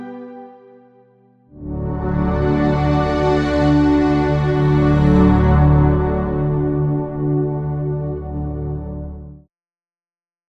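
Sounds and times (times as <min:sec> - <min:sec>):
violin: 0:01.6 - 0:08.7
piano: 0:01.6 - 0:09.3.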